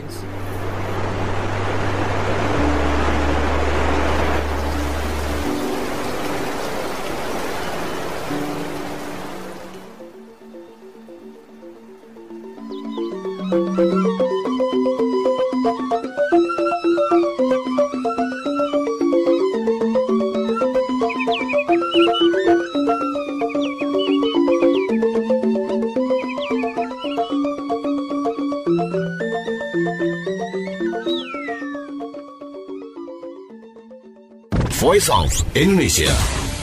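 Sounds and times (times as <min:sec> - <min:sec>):
roar of rushing water: 0:00.0 - 0:12.5
music: 0:00.0 - 0:36.6
speech: 0:35.0 - 0:36.4.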